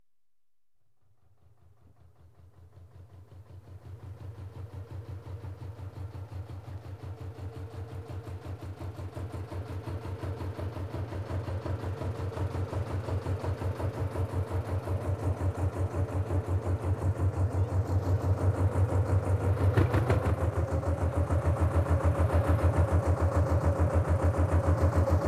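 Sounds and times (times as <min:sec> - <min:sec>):
canal narrow boat approaching: 0:04.6 - 0:25.2.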